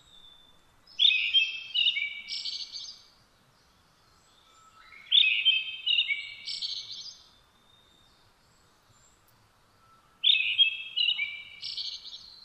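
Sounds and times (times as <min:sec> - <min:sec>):
brown-headed thrush singing whistled phrases: 0:00.0 - 0:03.1, 0:04.4 - 0:08.0, 0:09.8 - 0:12.4.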